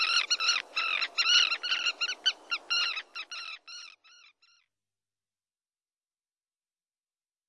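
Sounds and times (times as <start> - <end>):
common tern calls: 0.0 - 4.7.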